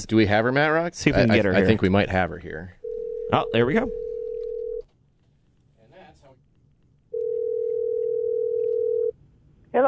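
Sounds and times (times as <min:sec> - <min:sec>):
speech: 0:00.0 - 0:04.0
noise: 0:00.0 - 0:09.8
telephone dial tone while placing a call from a radio studio: 0:04.0 - 0:04.8, 0:07.1 - 0:09.1.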